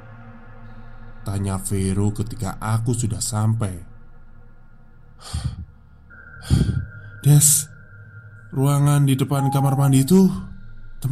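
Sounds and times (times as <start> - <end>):
speech: 1.2 - 3.9, 5.2 - 5.5, 7.2 - 7.7, 8.5 - 11.1
heavy panting after running: 5.2 - 5.6.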